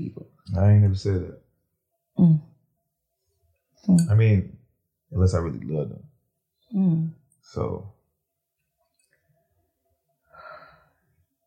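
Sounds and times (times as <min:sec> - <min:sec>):
speech: 0:00.0 - 0:01.4, 0:02.2 - 0:02.5, 0:03.8 - 0:06.1, 0:06.7 - 0:08.0
heavy raspy breath from a person with asthma: 0:10.3 - 0:11.0.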